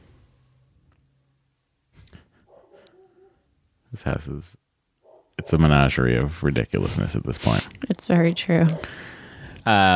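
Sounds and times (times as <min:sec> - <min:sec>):
dog barking: 0:02.4 - 0:03.5, 0:05.0 - 0:05.6, 0:08.6 - 0:09.0
dog whining: 0:02.5 - 0:03.4
speech: 0:03.9 - 0:04.6, 0:05.4 - 0:09.9.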